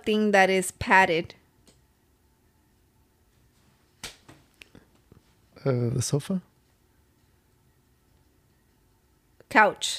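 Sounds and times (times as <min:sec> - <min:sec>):
speech: 0:00.0 - 0:01.4, 0:05.6 - 0:06.5, 0:09.5 - 0:09.9
hand slapping knee as quiz answer buzzer: 0:04.0 - 0:04.5.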